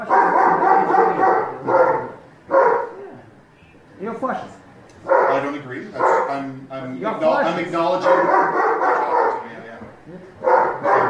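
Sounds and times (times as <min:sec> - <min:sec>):
unhappy dog barking: 0:00.0 - 0:03.0, 0:05.0 - 0:06.4, 0:08.0 - 0:09.6, 0:10.4 - 0:11.0
speech: 0:05.7 - 0:08.5.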